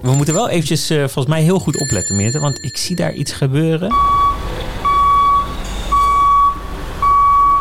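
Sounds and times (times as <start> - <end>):
speech: 0.0 - 4.4
truck reversing beeps: 3.9 - 7.6.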